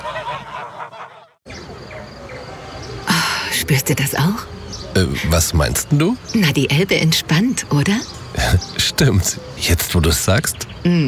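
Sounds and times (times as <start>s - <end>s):
flock of geese honking: 0.0s - 1.4s
speech: 3.7s - 11.0s.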